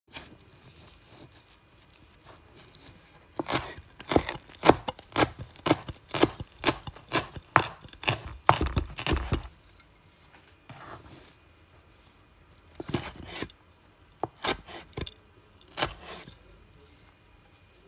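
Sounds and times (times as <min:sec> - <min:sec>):
knife cutting vegetables: 0:02.2 - 0:11.4, 0:12.6 - 0:13.6, 0:14.2 - 0:16.9.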